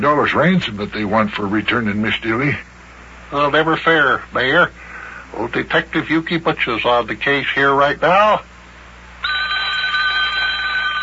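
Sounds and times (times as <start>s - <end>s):
speech: 0.0s - 2.7s, 3.3s - 8.5s
telephone bell ringing: 9.2s - 11.0s.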